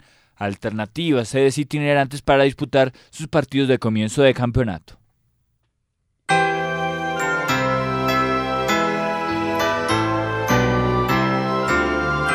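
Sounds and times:
speech: 0:00.4 - 0:05.0
bells playing a festive Christmas melody: 0:06.3 - 0:12.3.

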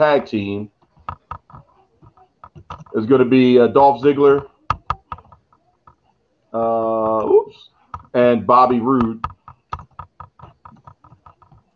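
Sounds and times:
speech: 0:00.0 - 0:00.8, 0:02.7 - 0:04.5, 0:06.5 - 0:09.3
hollow knock of an uneven table rocking on one corner: 0:00.7 - 0:03.0, 0:04.4 - 0:06.0, 0:07.9 - 0:08.2, 0:09.0 - 0:11.7
keyboard typing on a rocking table: 0:00.7 - 0:03.4, 0:04.0 - 0:06.2, 0:07.0 - 0:11.7.

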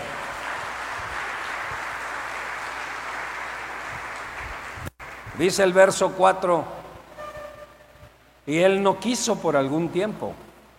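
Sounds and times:
crowd applauding: 0:00.0 - 0:05.7
speech: 0:05.4 - 0:06.8, 0:08.5 - 0:10.4.

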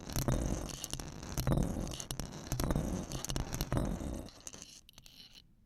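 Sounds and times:
loud continuous scraping on a microphone: 0:00.3 - 0:04.7.

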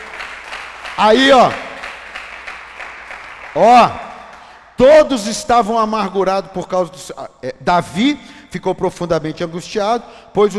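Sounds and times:
audience applauding: 0:00.0 - 0:04.6
speech: 0:01.0 - 0:01.6, 0:03.6 - 0:04.0, 0:04.8 - 0:10.5.

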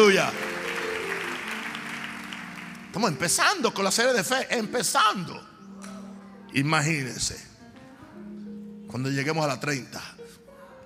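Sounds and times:
speech: 0:00.0 - 0:00.5, 0:02.9 - 0:05.5, 0:06.5 - 0:07.5, 0:08.9 - 0:10.1
audience clapping loudly: 0:00.0 - 0:03.8.

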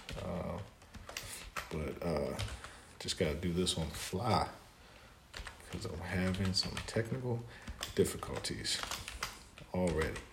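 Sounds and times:
rapid clicking of keys on a computer keyboard: 0:00.0 - 0:02.8, 0:05.3 - 0:10.3
speech: 0:01.7 - 0:04.6, 0:05.7 - 0:09.1, 0:09.7 - 0:10.3.

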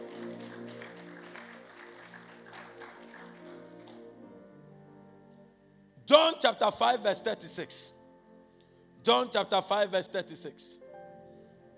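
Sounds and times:
audience clapping: 0:00.0 - 0:04.2
speech: 0:06.1 - 0:08.0, 0:09.0 - 0:10.8.

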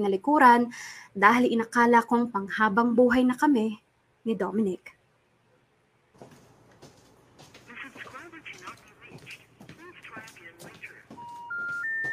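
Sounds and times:
speech: 0:00.0 - 0:05.0
talk: 0:07.6 - 0:11.2
rising phone line beeps for an unanswered call: 0:11.1 - 0:12.1.

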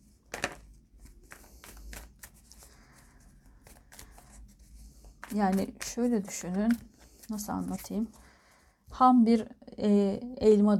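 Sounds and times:
tarot cards being shuffled and handled: 0:00.2 - 0:08.3
speech: 0:05.3 - 0:08.2, 0:09.0 - 0:10.7.

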